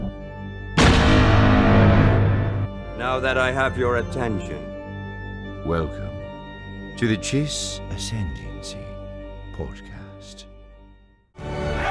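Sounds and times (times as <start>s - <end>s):
heavy gunfire: 0.8s - 2.7s
speech: 3.0s - 4.7s, 5.6s - 6.1s, 7.0s - 8.9s, 9.6s - 10.5s.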